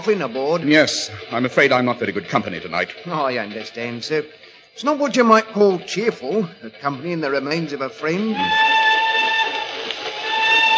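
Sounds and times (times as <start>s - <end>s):
speech: 0.0s - 8.8s
steam train whistle blowing: 8.3s - 10.7s.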